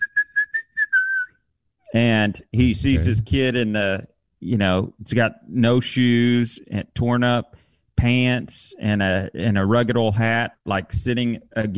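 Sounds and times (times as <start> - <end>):
person whistling a tune: 0.0 - 1.4
speech: 1.9 - 11.7.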